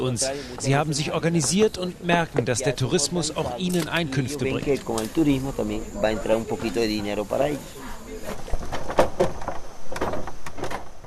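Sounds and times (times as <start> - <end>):
wooden suspension bridge creaking and groaning as it is crossed: 0.0 - 5.1, 8.2 - 11.0
speech: 0.0 - 8.5.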